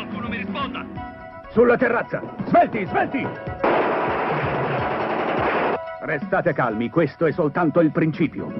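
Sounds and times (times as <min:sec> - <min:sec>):
speech: 0:01.5 - 0:03.7, 0:06.0 - 0:08.5
machine gun fire: 0:03.6 - 0:05.8.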